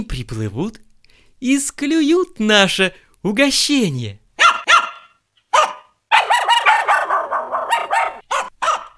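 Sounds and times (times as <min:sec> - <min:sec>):
speech: 0:00.0 - 0:04.2
dog barking and yelping by a river: 0:04.4 - 0:08.9.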